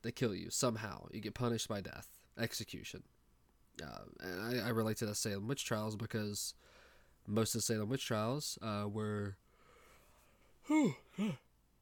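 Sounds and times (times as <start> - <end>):
speech: 0.0 - 3.2, 3.8 - 9.4, 10.6 - 11.4
person yawning: 10.6 - 11.5.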